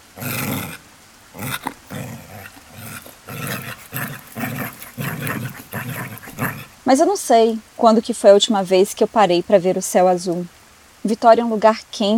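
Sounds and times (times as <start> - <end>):
pet dog barking and growling: 0.0 - 6.9
speech: 6.9 - 12.1.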